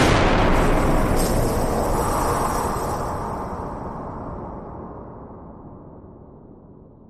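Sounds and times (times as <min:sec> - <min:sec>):
horror scare sound: 0:00.0 - 0:05.0.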